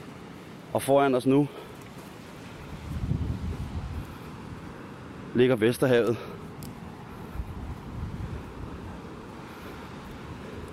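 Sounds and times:
speech: 0:00.7 - 0:01.7, 0:05.4 - 0:06.4
wind among coastal dunes buffeting the microphone: 0:02.4 - 0:04.8, 0:06.4 - 0:10.7.

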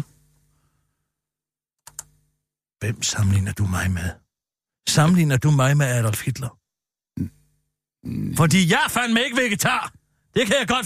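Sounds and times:
computer keyboard key clicks: 0:01.8 - 0:02.1
speech: 0:02.8 - 0:04.2, 0:04.8 - 0:06.6, 0:07.2 - 0:07.4, 0:08.0 - 0:10.8.

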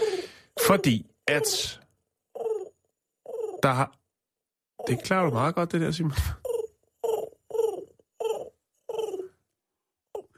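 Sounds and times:
speech: 0:00.7 - 0:01.8, 0:03.6 - 0:04.0, 0:04.8 - 0:06.4
man imitating pigeon cooing: 0:02.4 - 0:03.6, 0:06.2 - 0:09.3.

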